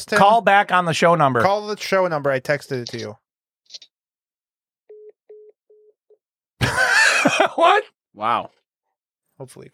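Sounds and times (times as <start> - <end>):
speech: 0.0 - 3.9, 7.2 - 8.6, 9.4 - 9.7
telephone line tone of short mid-pitched beeps: 4.9 - 6.0.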